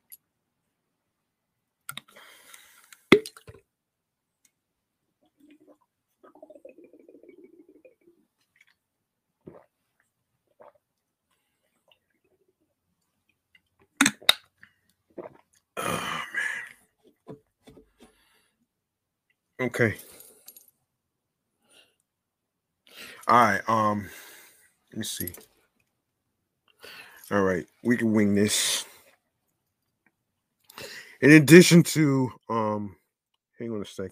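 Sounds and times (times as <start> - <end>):
person sipping a drink: 5.3 - 8.8, 9.5 - 12.3, 15.1 - 16.7
soft slurps: 5.3 - 8.8, 9.5 - 12.3
swallowing: 5.3 - 8.8, 9.5 - 9.8
speech: 19.6 - 20.1, 23.3 - 24.2, 25.0 - 25.5, 27.3 - 28.8, 31.2 - 33.0, 33.6 - 34.1.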